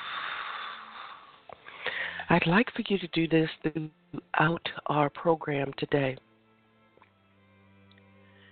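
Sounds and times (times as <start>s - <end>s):
deep inhale and exhale breathing: 0.0s - 2.3s, 8.2s - 8.4s
speech: 2.3s - 6.3s.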